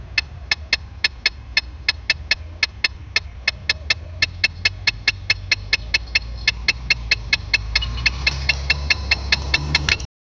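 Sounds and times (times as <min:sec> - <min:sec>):
Mercedes AMG One car engine: 0:00.0 - 0:10.1.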